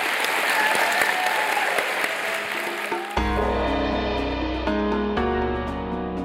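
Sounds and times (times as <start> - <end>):
audience clapping to thank a guest after an interview: 0.0 - 3.4
upbeat instrumental music: 2.3 - 6.2.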